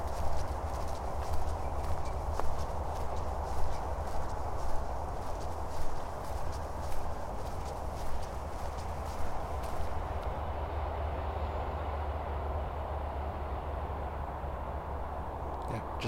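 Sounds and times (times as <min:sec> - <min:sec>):
light rhythmic footsteps: 0:00.0 - 0:10.3
distant highway traffic roar through forest: 0:00.0 - 0:16.0.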